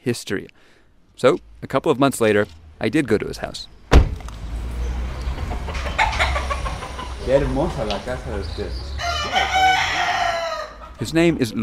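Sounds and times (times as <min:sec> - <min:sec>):
speech: 0:00.0 - 0:03.8, 0:07.3 - 0:09.5, 0:11.0 - 0:11.6
fighting roosters tied to cinder blocks crowing on a patio in Vega Alta: 0:04.8 - 0:11.2.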